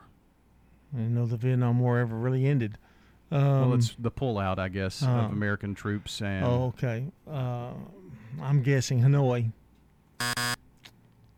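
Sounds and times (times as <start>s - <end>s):
speech: 0.9s - 9.6s
game-show wrong-answer buzzer: 10.2s - 10.6s.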